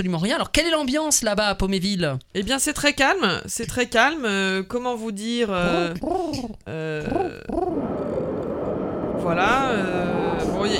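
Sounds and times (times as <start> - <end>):
speech: 0.0 - 7.7, 9.2 - 10.7
voice imitating wind blowing with hooting whooo tones: 5.6 - 10.7.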